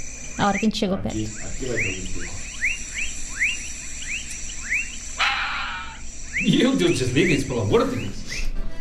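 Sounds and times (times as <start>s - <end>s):
crickets trilling: 0.0s - 8.6s
short rising chirps: 0.1s - 8.5s
speech: 0.4s - 2.4s, 6.4s - 8.2s.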